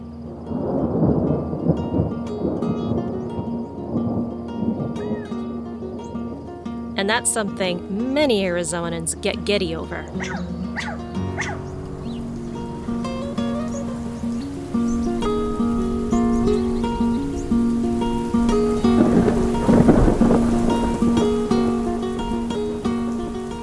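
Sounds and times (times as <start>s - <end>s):
sustained droning musical tones: 0.0s - 23.6s
rain of a monsoon thunderstorm in Arizona: 0.2s - 23.6s
deep rolling thunder of a monsoon thunderstorm in Arizona: 0.3s - 6.4s, 11.5s - 22.6s
speech: 7.0s - 11.0s.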